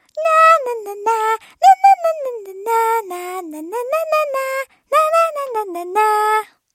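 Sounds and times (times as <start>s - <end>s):
singing: 0.2s - 6.6s.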